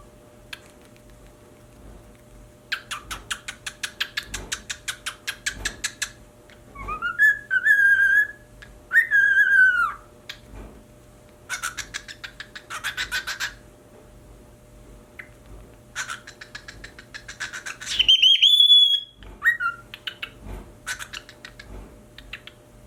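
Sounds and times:
pied cockatiel chattering and whistling: 2.7s - 6.1s, 6.8s - 10.0s, 11.5s - 13.6s, 16.0s - 22.6s.

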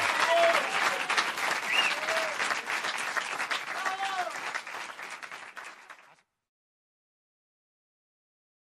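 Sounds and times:
audience applause at a live humor show: 0.0s - 6.2s.

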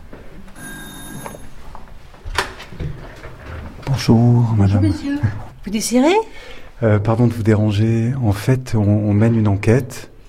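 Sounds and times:
buzzing doorbell ringing at a fourth-floor apartment: 0.6s - 1.6s
speech: 4.0s - 10.1s.

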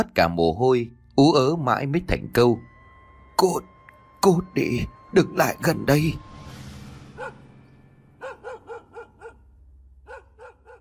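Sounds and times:
speech: 0.0s - 2.7s, 3.4s - 6.3s
dog barking in short ringing yelps: 7.2s - 7.5s, 8.2s - 10.7s.

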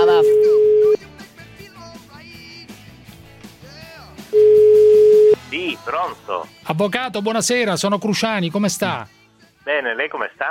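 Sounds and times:
speech: 0.0s - 0.4s, 5.8s - 10.4s
telephone ringback tone while placing a call: 0.0s - 1.0s, 4.4s - 5.4s.

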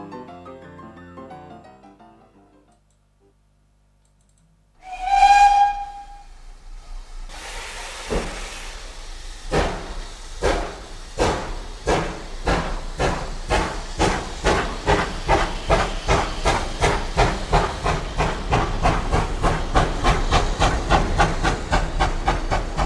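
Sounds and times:
coal-fired steam locomotive whistle as it departs: 4.8s - 6.6s
steam hissing from a steam locomotive: 4.8s - 22.8s.

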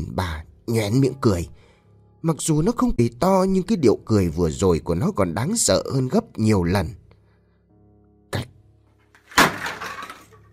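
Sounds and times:
speech: 0.7s - 1.6s, 2.2s - 7.0s, 8.3s - 8.5s
box dropped on the ground: 9.2s - 10.5s.

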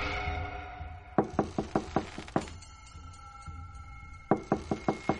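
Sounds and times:
hard knocking by hand on a room door: 1.2s - 2.5s, 4.3s - 5.1s.

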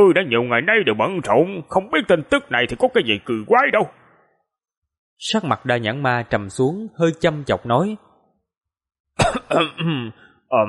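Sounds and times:
speech: 0.0s - 4.0s, 5.2s - 8.1s, 9.2s - 10.6s
embarrassed man coughing lightly: 9.2s - 10.2s.

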